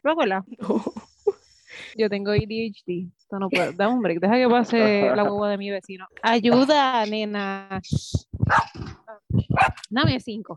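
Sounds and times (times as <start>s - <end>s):
speech: 0.0s - 1.1s, 1.7s - 10.5s
laughter: 4.4s - 5.6s
dog barking: 8.5s - 8.9s, 9.5s - 9.8s.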